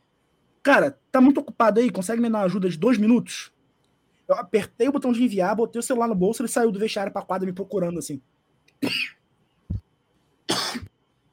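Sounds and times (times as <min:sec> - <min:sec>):
speech: 0:00.7 - 0:03.6, 0:04.3 - 0:09.2
sharp breathy coughs: 0:08.8 - 0:09.2, 0:10.5 - 0:10.9.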